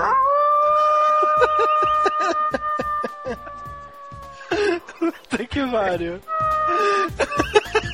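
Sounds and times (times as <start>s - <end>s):
person imitating a wolf howl: 0.0s - 4.5s, 6.3s - 6.9s
people laughing: 1.2s - 3.7s, 4.5s - 5.4s, 6.8s - 7.9s
speech: 5.6s - 7.6s.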